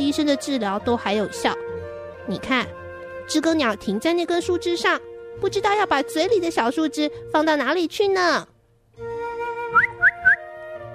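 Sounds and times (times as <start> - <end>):
speech: 0.0 - 9.1
soft sustained music: 0.0 - 10.9
person whistling to a robin in a garden: 9.6 - 10.5.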